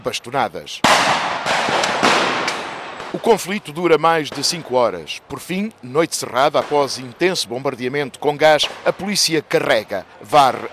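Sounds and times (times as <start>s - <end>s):
speech: 0.0s - 2.4s, 3.1s - 10.7s
firecrackers exploding during a street riot in a square: 0.8s - 3.4s, 8.6s - 9.1s.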